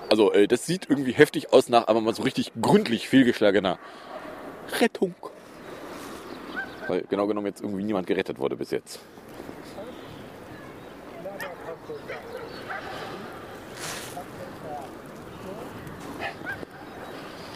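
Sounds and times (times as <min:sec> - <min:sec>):
dense constant noise: 0:00.0 - 0:17.5
speech: 0:00.1 - 0:05.4, 0:06.9 - 0:09.8
murmuring voices: 0:09.2 - 0:17.3
dog barking: 0:11.4 - 0:13.3, 0:16.2 - 0:17.0.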